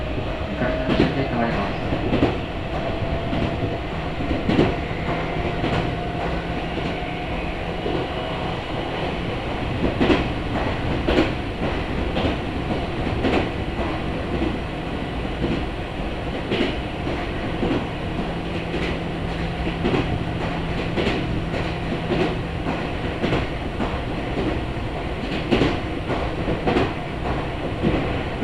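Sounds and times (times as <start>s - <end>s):
local commuter train rumbling between stations, heard from inside the car: 0.0s - 28.4s
sharp clicks and knocks from the rails: 0.0s - 28.4s.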